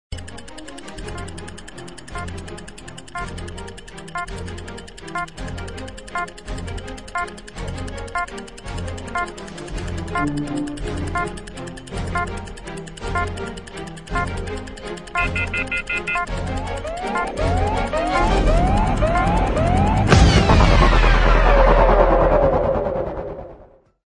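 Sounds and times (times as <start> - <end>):
tense music: 0.1 - 23.9
stopwatch beeps: 0.2 - 6.4, 7.0 - 20.1
siren: 15.2 - 23.6.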